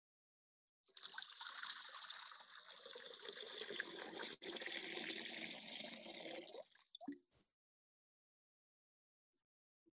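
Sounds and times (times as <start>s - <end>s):
water poured into a bowl: 0.9s - 7.2s.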